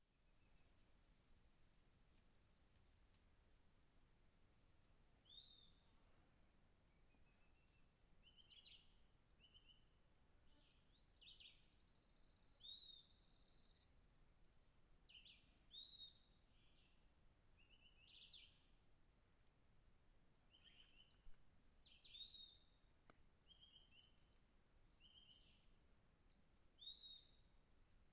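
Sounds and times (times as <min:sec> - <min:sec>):
cricket chirping in dense forest in late afternoon: 0:00.2 - 0:28.1
bird singing in dense forest in late afternoon: 0:05.2 - 0:05.9, 0:06.9 - 0:09.9, 0:10.5 - 0:13.9, 0:15.1 - 0:17.0, 0:17.6 - 0:18.7, 0:20.5 - 0:22.8, 0:23.5 - 0:24.2, 0:25.0 - 0:27.5.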